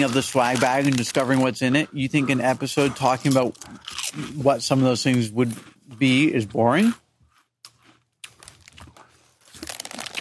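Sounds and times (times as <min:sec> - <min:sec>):
potato chip bag crinkling: 0:00.0 - 0:01.5, 0:07.7 - 0:10.1
speech: 0:00.0 - 0:07.0.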